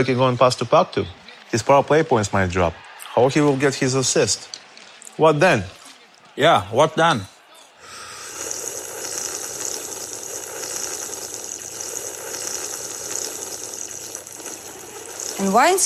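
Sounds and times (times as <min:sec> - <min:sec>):
speech: 0:00.0 - 0:04.6, 0:05.2 - 0:05.8, 0:06.4 - 0:07.3, 0:15.4 - 0:15.8
loud slurping of liquid while eating breakfast: 0:07.8 - 0:15.8.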